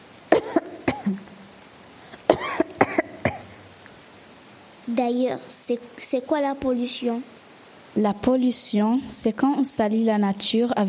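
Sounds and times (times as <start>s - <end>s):
harsh hacking coughs: 0.3s - 1.3s, 2.1s - 3.6s
speech: 4.9s - 10.8s.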